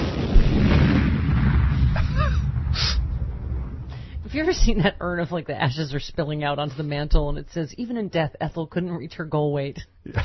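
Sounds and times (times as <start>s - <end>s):
big explosion sound effect: 0.0s - 5.6s
speech: 4.4s - 10.2s.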